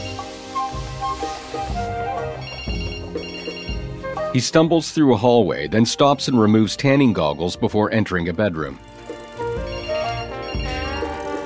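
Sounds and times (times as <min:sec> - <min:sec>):
speech: 0:01.1 - 0:02.5, 0:04.4 - 0:08.9
telephone ringing on a bedroom nightstand: 0:02.4 - 0:03.9, 0:09.0 - 0:11.4.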